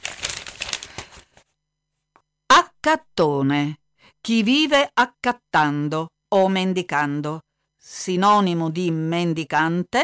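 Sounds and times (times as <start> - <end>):
book pages being flipped nervously: 0.0 - 1.6
speech: 2.8 - 10.0.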